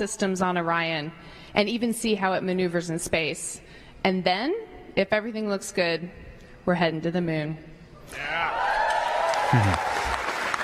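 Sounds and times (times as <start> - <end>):
speech: 0.0 - 8.7, 9.5 - 9.9
cheering voices: 8.1 - 10.6
audience applauding: 8.2 - 10.6.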